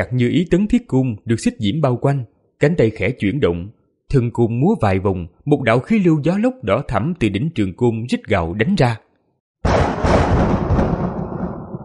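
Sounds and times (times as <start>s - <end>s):
speech: 0.0s - 9.0s, 9.6s - 10.5s
thunder sound effect: 9.6s - 11.8s.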